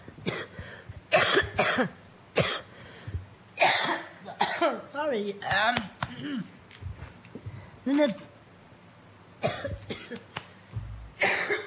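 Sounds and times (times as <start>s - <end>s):
person coughing in short harsh bursts: 0.2s - 2.7s, 3.6s - 4.8s, 9.4s - 10.3s, 11.2s - 11.6s
speech: 1.8s - 2.0s, 5.1s - 6.6s, 7.9s - 8.3s.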